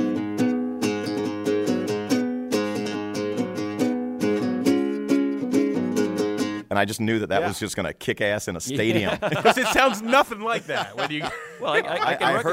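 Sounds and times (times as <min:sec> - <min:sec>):
riff played on a nylon-string acoustic guitar: 0:00.0 - 0:06.7
speech: 0:06.8 - 0:12.5
laughter: 0:08.7 - 0:12.5.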